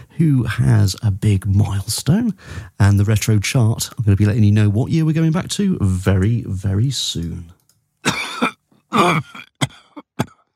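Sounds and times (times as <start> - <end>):
speech: 0.2 - 7.6, 8.9 - 9.3
person coughing: 8.0 - 10.5.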